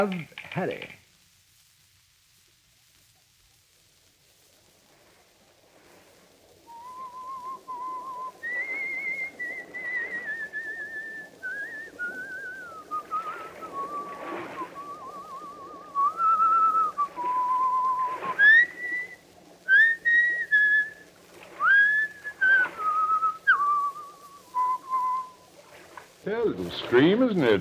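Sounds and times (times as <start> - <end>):
speech: 0.0 - 1.0, 26.6 - 27.5
person whistling a slow lilting folk melody: 6.7 - 21.0, 21.6 - 25.4.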